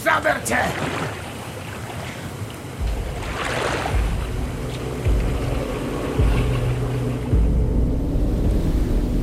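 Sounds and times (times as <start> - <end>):
river water rushing: 0.0 - 7.6
speech: 0.1 - 1.2
deep low rumble of rushing water: 2.8 - 9.2.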